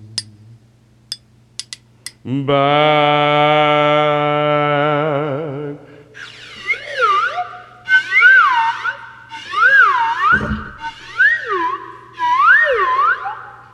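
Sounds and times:
faint steady hum: 0:00.0 - 0:13.7
speech: 0:02.2 - 0:03.4
slide whistle playing swooping notes: 0:06.2 - 0:13.7.

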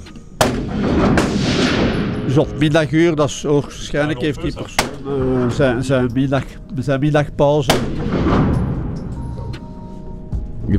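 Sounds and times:
gunshot from someone practising shooting: 0:00.4 - 0:02.6, 0:07.7 - 0:09.1
speech: 0:02.3 - 0:08.5
laughter: 0:03.4 - 0:06.2.

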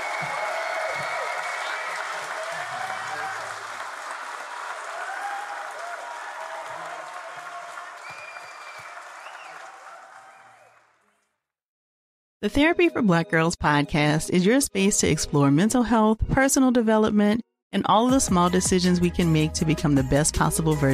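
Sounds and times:
live crowd in Boston applauding: 0:00.0 - 0:11.3
speech: 0:12.4 - 0:20.9.

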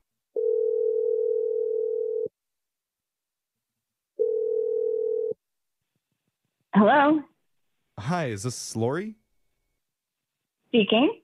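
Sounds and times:
steady telephone tone on a line: 0:00.4 - 0:02.3, 0:04.2 - 0:05.4
speech: 0:06.8 - 0:07.3, 0:08.0 - 0:09.2, 0:10.7 - 0:11.2.

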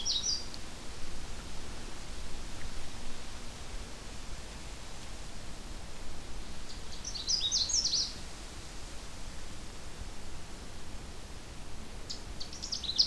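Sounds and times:
male Canada Warbler singing along a swamp trail: 0:00.0 - 0:00.6, 0:06.4 - 0:08.2, 0:12.0 - 0:13.0
background hiss: 0:00.0 - 0:13.0.

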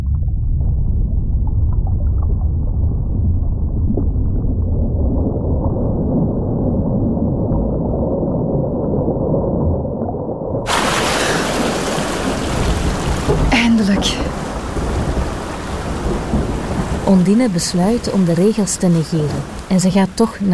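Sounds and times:
deep rolling thunder rumble: 0:00.0 - 0:19.8
heavy rain pouring in a storm: 0:10.7 - 0:20.5
speech: 0:17.1 - 0:20.5.

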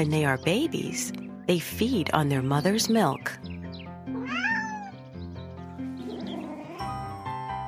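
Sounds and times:
speech: 0:00.0 - 0:03.5
music: 0:00.0 - 0:07.6
kitten meowing: 0:04.1 - 0:05.0, 0:06.0 - 0:07.0.

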